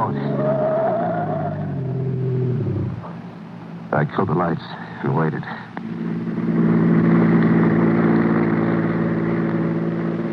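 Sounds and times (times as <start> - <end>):
car engine roaring as the car speeds past on a road: 0.0 - 3.2, 5.8 - 10.3
speech: 3.9 - 5.7.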